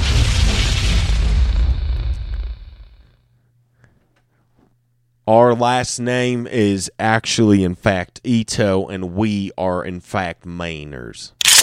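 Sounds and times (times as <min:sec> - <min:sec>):
explosion sound effect boom: 0:00.0 - 0:03.2
speech: 0:05.3 - 0:11.4.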